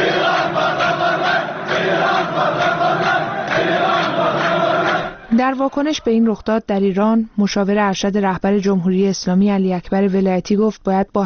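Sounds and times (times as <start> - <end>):
crowd of protesters chanting: 0.0 - 6.0
speech: 5.4 - 11.2.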